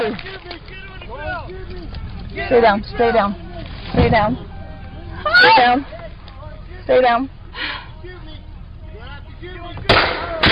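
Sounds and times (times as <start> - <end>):
speech: 0.0 - 0.6, 2.4 - 3.4, 4.0 - 4.5, 5.2 - 6.0, 6.9 - 7.8
gunshots: 9.9 - 10.5.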